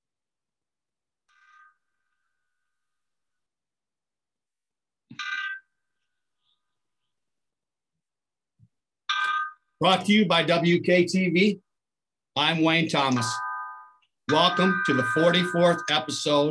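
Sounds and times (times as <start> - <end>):
speech: 9.8 - 11.6, 12.4 - 13.4, 14.3 - 16.4
bell strikes: 13.0 - 16.4.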